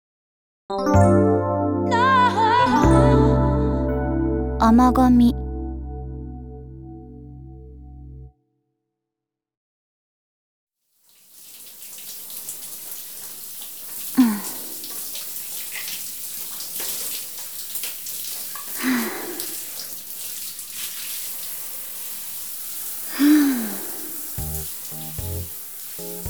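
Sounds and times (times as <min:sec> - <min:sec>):
speech: 0:00.7 - 0:01.3, 0:04.7 - 0:05.4
music: 0:00.7 - 0:08.4, 0:24.4 - 0:26.2
shower water spraying: 0:11.0 - 0:26.2.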